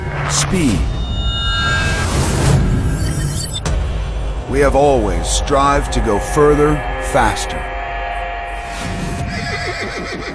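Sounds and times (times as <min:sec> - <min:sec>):
steady low rumble: 0:00.0 - 0:09.3
speech: 0:00.3 - 0:01.0, 0:04.5 - 0:07.7
horse neighing: 0:09.2 - 0:10.3.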